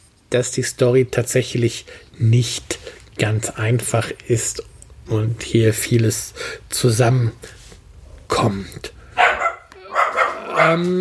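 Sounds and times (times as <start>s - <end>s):
speech: 0.3s - 7.6s, 8.3s - 9.0s, 10.6s - 11.0s
dog barking: 9.2s - 10.8s.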